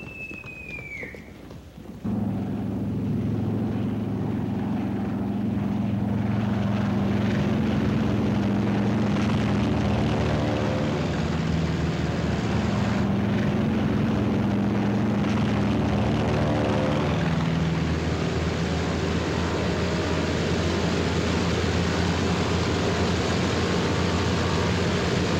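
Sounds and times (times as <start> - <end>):
warplane propeller engines roaring on a carrier flight deck: 0.9 - 25.3.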